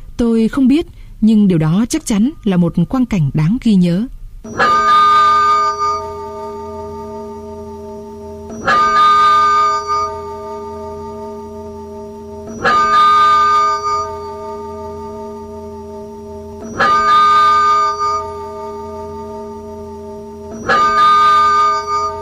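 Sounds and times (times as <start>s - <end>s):
speech: 0.2s - 4.8s
cathedral bells tolling: 4.5s - 22.2s.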